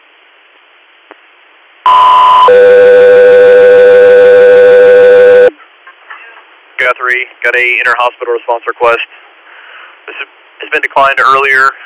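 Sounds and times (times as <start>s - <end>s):
faint hiss: 0.0s - 11.8s
radio dispatch alert tones: 1.9s - 5.6s
speech: 7.0s - 9.2s, 10.1s - 11.8s.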